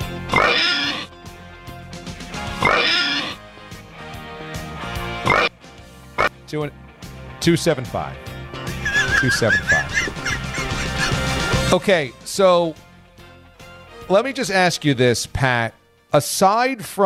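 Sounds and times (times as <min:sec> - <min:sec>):
person imitating pig oinks and snorting grunts: 0:00.3 - 0:01.1, 0:02.6 - 0:03.4, 0:05.2 - 0:05.5
speech: 0:06.5 - 0:06.8, 0:07.4 - 0:08.3, 0:09.2 - 0:09.8, 0:11.7 - 0:12.9, 0:14.1 - 0:17.0
laughter: 0:08.7 - 0:11.8.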